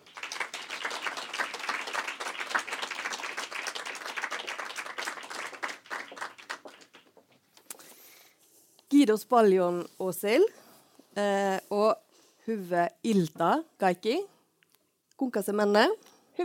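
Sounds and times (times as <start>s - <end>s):
audience applause: 0.0s - 7.2s
speech: 9.0s - 10.6s, 11.2s - 14.3s, 15.2s - 16.4s.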